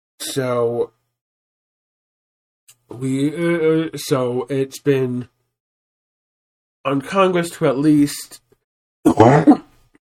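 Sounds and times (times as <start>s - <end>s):
speech: 0.4s - 1.0s, 2.9s - 5.3s, 6.8s - 8.4s, 9.0s - 9.7s
cough: 9.1s - 9.8s.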